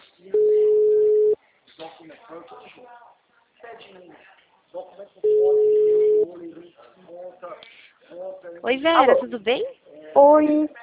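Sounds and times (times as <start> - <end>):
people talking on a telephone line: 0.3 - 10.8
telephone tone after a dropped call: 0.4 - 1.4
speech: 2.4 - 3.1, 3.7 - 10.8.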